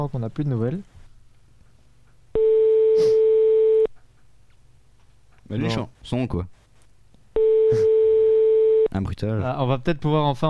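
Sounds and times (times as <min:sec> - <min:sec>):
speech: 0:00.0 - 0:01.0, 0:05.5 - 0:06.6, 0:09.0 - 0:10.4
telephone ringing tone of an outgoing call: 0:02.4 - 0:03.9, 0:07.4 - 0:08.9.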